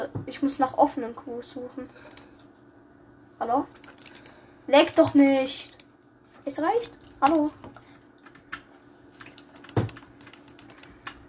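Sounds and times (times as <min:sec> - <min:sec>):
speech: 0:00.0 - 0:02.3, 0:03.4 - 0:04.0, 0:04.7 - 0:05.8, 0:06.4 - 0:07.7
computer keyboard typing a chat message: 0:03.7 - 0:05.9, 0:09.2 - 0:11.2.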